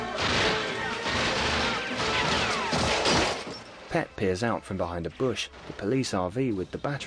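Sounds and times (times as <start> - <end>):
gunfire in a mansion: 0.0 - 3.7
bullets shattering windows: 0.0 - 4.0
bullets riddling a piano: 0.2 - 3.6
speech: 3.9 - 7.0.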